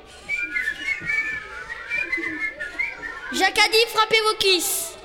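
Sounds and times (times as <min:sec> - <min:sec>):
several people whistling together on command in a game: 0:00.0 - 0:03.6
speech: 0:03.3 - 0:04.8.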